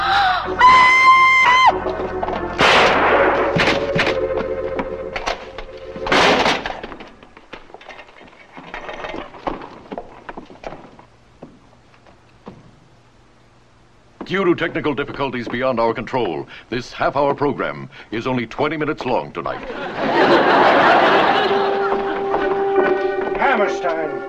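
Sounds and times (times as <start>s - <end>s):
woman screaming: 0.0s - 1.8s
bangs and crashes: 1.8s - 7.3s
speech: 14.3s - 21.1s
laughter: 19.5s - 23.4s.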